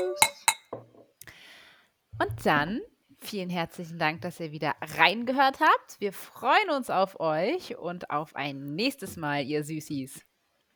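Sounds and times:
glasses clinking together in a toast: 0.0s - 1.0s
speech: 2.4s - 10.3s.

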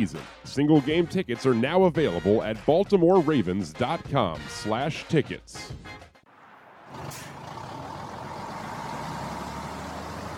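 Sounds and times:
speech: 0.0s - 6.1s
tractor-trailer truck diesel engine rumbling: 6.3s - 10.3s
tractor-trailer truck air brakes hissing: 6.9s - 7.6s.

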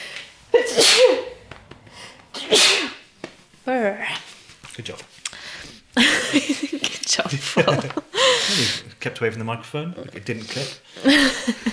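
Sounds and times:
loud sneezes: 0.4s - 1.6s, 2.3s - 3.0s
speech: 4.8s - 5.1s, 7.2s - 11.7s
laughter: 6.0s - 8.9s, 11.1s - 11.7s.

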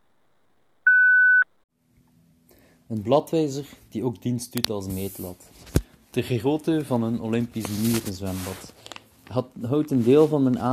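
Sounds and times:
voicemail tone beep: 0.9s - 1.5s
speech: 2.9s - 10.7s.

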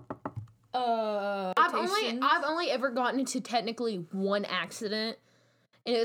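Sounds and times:
knocking on wood: 0.0s - 0.5s
speech: 0.8s - 6.0s.

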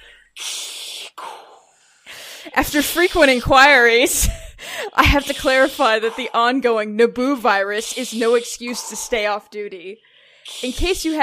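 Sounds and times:
voice imitating mechanical respirator breathing: 0.0s - 3.4s, 4.9s - 6.5s, 7.8s - 9.5s, 10.2s - 11.2s
speech: 2.4s - 4.4s, 5.0s - 11.2s.

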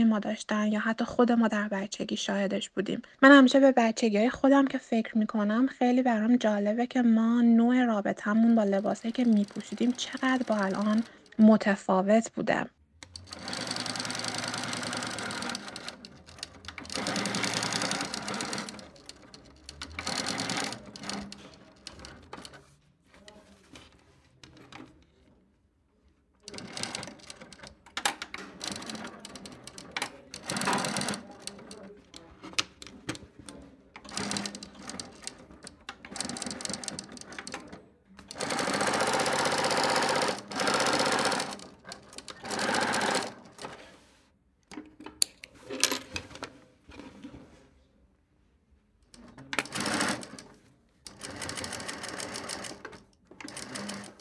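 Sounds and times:
speech: 0.0s - 13.7s
sewing machine stitching: 8.4s - 11.3s, 13.0s - 25.1s, 26.4s - 44.0s, 49.1s - 54.1s.

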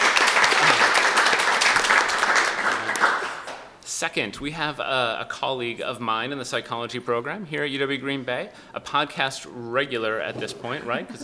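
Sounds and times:
room full of people applauding: 0.0s - 3.7s
speech: 4.0s - 11.2s.

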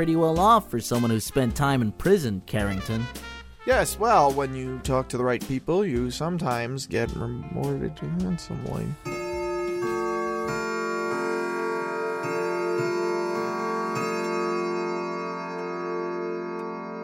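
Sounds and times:
speech: 0.0s - 9.2s
grandfather clock beside a fireplace chiming midnight: 9.0s - 17.0s.

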